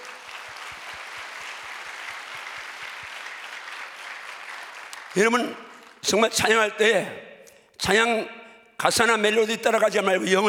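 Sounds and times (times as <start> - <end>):
audience applauding a choir: 0.0 - 6.0
rhythmic thumps of people clapping in time for the choir: 0.0 - 6.0
speech: 5.2 - 10.4.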